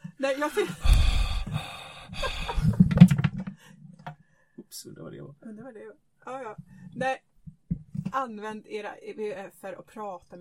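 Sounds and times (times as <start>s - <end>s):
speech: 0.2s - 1.1s, 5.0s - 7.3s, 8.2s - 10.3s
person imitating heavy breathing with raspy inhales, snorts and panting: 0.6s - 3.6s.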